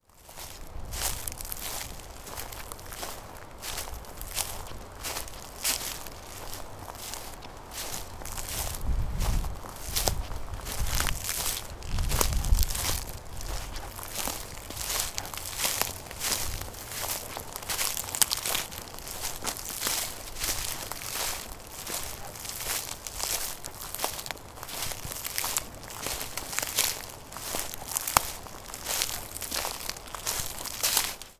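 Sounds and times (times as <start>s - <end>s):
footsteps on pine duff in Yosemite Valley: 0.2s - 31.3s.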